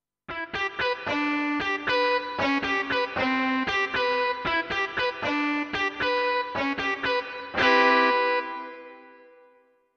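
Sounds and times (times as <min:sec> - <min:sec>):
distortion: 0:00.3 - 0:09.9.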